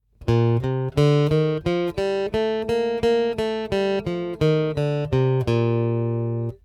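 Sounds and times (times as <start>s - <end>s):
guitar playing a B-flat major scale: 0.2s - 6.6s.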